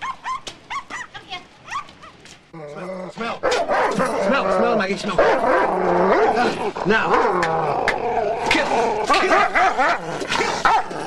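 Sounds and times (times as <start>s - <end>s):
Doberman barking: 0.0s - 2.2s, 3.4s - 4.2s, 5.2s - 6.3s, 9.1s - 9.8s, 10.6s - 11.0s
Doberman growling: 2.6s - 11.0s
speech: 3.2s - 11.0s.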